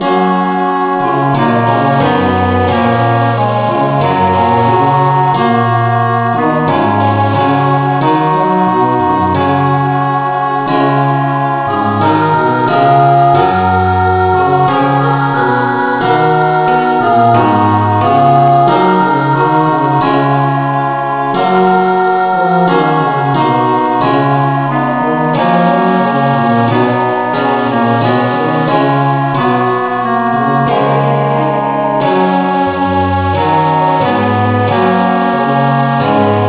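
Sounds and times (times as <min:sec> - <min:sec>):
instrumental music in F sharp: 0:00.0 - 0:36.4.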